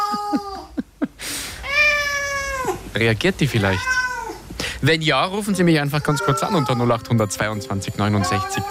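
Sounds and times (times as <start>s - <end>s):
cat meowing: 1.6s - 2.9s, 3.6s - 4.5s, 5.8s - 7.1s, 8.2s - 8.6s
speech: 3.0s - 3.9s, 4.8s - 8.6s.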